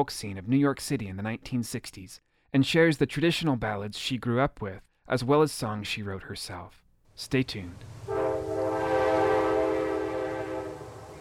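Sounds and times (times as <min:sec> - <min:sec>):
speech: 0:00.0 - 0:08.5
coal train engine rumble: 0:07.6 - 0:11.2
coal train horn echoing off steep mountains near Hazard Kentucky: 0:08.0 - 0:11.2.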